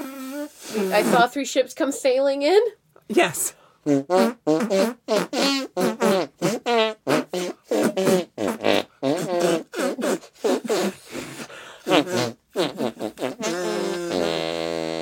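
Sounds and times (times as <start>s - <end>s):
arm-fart noises made by a person played as a song: 0.0s - 1.4s, 3.9s - 10.9s, 11.9s - 15.0s
speech: 0.7s - 8.1s.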